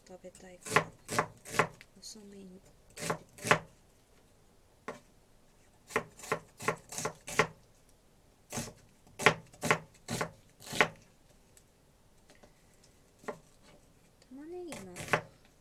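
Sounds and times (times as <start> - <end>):
speech: 0.1 - 3.2
knife chopping onion on a cutting board: 0.6 - 1.8, 3.0 - 3.7, 5.9 - 7.6, 8.5 - 11.0, 14.7 - 15.3.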